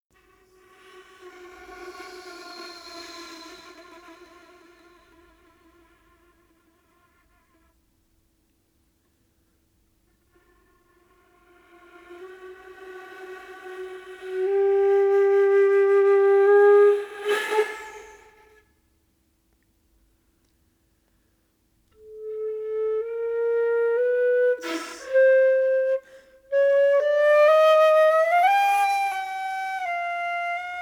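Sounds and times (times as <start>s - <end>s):
tree flute: 0.2s - 6.1s, 10.3s - 18.7s, 21.9s - 30.8s.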